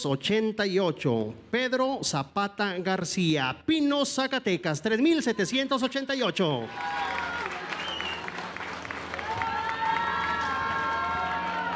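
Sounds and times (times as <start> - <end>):
speech: 0.0 - 7.3
crowd applauding for a raffle winner: 6.6 - 11.7
cheers and whistles: 6.7 - 8.4, 9.1 - 11.7.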